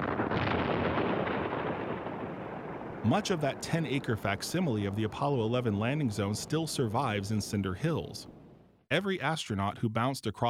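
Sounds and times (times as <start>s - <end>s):
heavy explosive blast digging craters in a cinder field: 0.0s - 5.2s
speech: 3.0s - 8.3s, 8.9s - 10.4s.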